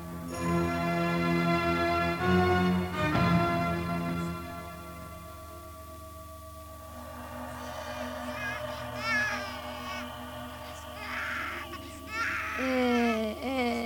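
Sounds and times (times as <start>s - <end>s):
sounds: 0.0s - 13.8s
feverish infant crying: 7.4s - 13.8s.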